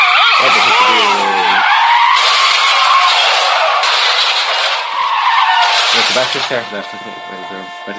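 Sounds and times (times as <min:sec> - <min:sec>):
car tires screeching while skidding: 0:00.0 - 0:07.9
speech: 0:06.2 - 0:07.9.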